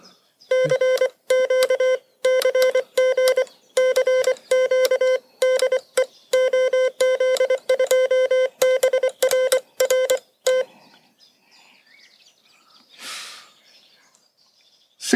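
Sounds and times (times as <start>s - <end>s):
Morse code tones sending a CQ call: 0.5s - 10.7s.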